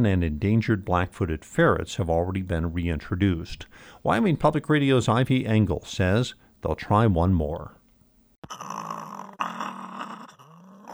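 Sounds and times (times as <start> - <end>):
speech: 0.0 - 7.8, 8.5 - 8.8
live-trapped swift fox growling: 8.4 - 10.9.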